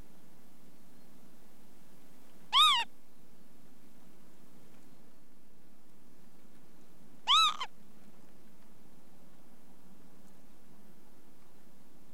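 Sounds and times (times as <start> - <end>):
faint low hum: 0.0 - 12.1
Northern Lapwing pee-wit calls: 2.5 - 2.9, 7.3 - 7.7.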